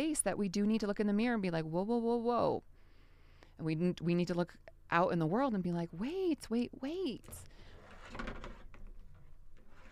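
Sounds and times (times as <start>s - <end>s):
speech: 0.0s - 2.7s, 3.6s - 8.4s
objects rattling and scraping as they settle: 7.3s - 9.9s.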